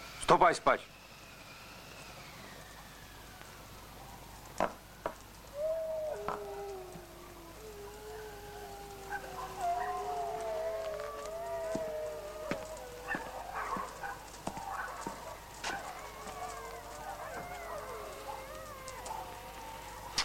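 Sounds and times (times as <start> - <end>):
speech: 0.3 - 1.0
cold north wind howling: 5.2 - 20.2.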